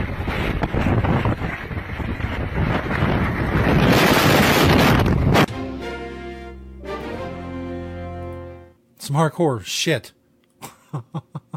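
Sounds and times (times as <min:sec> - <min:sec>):
strong gusting wind against the microphone: 0:00.0 - 0:05.5
speech: 0:09.1 - 0:10.2, 0:10.9 - 0:11.4.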